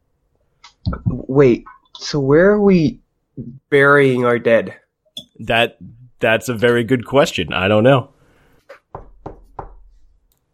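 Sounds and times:
speech: 0:01.1 - 0:04.8, 0:05.4 - 0:08.1
knocking on a wooden door: 0:08.9 - 0:09.8.

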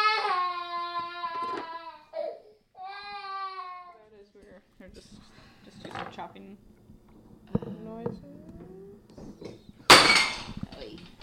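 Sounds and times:
faint low household sounds: 0:00.0 - 0:11.2
speech: 0:04.9 - 0:06.8, 0:07.8 - 0:08.5
bowl shattering after being pulled off a kitchen counter: 0:09.9 - 0:10.6.

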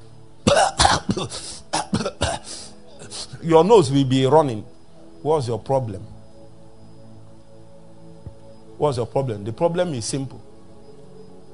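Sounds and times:
person hacking cough: 0:00.5 - 0:02.5
speech: 0:00.9 - 0:02.2, 0:03.4 - 0:06.2, 0:08.8 - 0:10.5.

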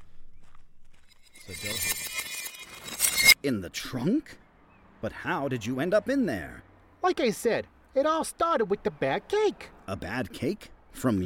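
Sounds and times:
footsteps crunching on gravel in the dark: 0:00.0 - 0:01.8
speech: 0:01.5 - 0:02.0, 0:03.4 - 0:04.4, 0:05.0 - 0:11.2.

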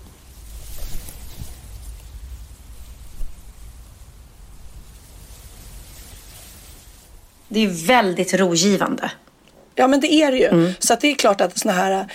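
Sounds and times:
wind blowing through trees: 0:00.0 - 0:09.0
speech: 0:07.5 - 0:09.2, 0:09.8 - 0:12.1.

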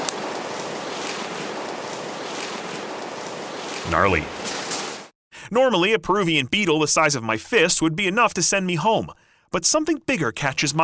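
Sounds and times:
rushing river water: 0:00.0 - 0:05.1
speech: 0:03.9 - 0:04.6, 0:05.5 - 0:10.8.

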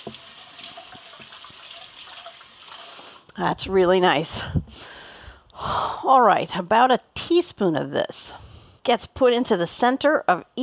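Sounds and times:
speech: 0:00.0 - 0:00.3, 0:03.4 - 0:05.0, 0:05.6 - 0:10.6
tap water running from a sink faucet while washing hands: 0:00.0 - 0:03.1.

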